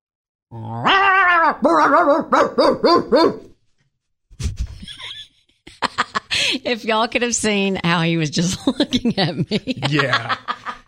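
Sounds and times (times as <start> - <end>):
person imitating a dog growling: 0.5 - 2.4
speech: 0.5 - 3.5, 6.6 - 10.5
person imitating yappy dog barks: 0.8 - 3.4
laughter: 4.4 - 6.6, 8.4 - 10.8.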